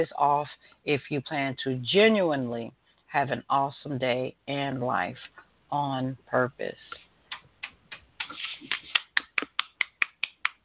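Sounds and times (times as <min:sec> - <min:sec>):
speech: 0:00.0 - 0:07.0
hand clapping: 0:07.3 - 0:10.6.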